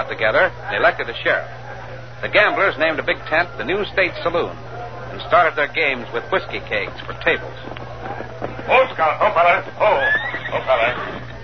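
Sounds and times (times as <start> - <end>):
faint steady low hum: 0.0 - 11.4
speech: 0.1 - 1.6, 2.2 - 7.8, 8.7 - 11.2
horse whinnying as its rider reins it up outside a big tent: 9.8 - 11.3.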